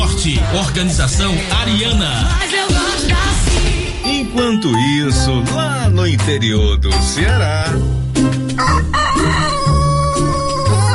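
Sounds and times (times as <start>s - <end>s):
speech: 0.2s - 9.4s
rooster crowing: 8.5s - 10.8s.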